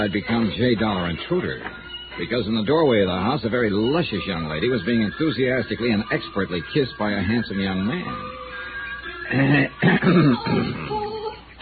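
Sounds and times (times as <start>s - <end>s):
speech: 0.0s - 8.4s, 9.3s - 10.9s
man giving a deliberate cough: 9.6s - 10.9s.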